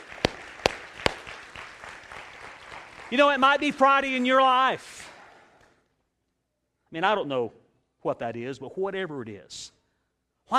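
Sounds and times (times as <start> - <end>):
church congregation hand clapping at a Sunday service: 0.0 - 5.9
speech: 3.1 - 5.0, 6.9 - 9.7.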